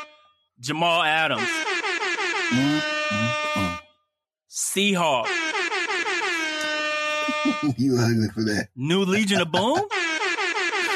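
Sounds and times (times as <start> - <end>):
loud blaring air horn blast: 0.0 - 0.3, 1.4 - 3.9, 5.2 - 7.7, 9.9 - 10.9
speech: 0.6 - 3.8, 4.5 - 5.4, 7.4 - 10.0
laughter: 7.2 - 9.9.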